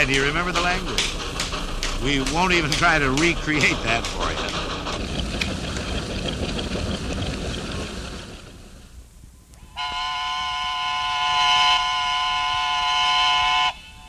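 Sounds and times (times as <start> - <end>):
speech: 0.0 - 1.3, 2.0 - 5.2
steam threshing engine churning with rumbling clatter: 0.0 - 9.0
loud sustained steam whistle at noon: 9.6 - 14.0.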